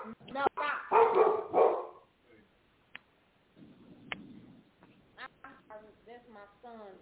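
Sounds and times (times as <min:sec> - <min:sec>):
dog barking: 0:00.6 - 0:02.1.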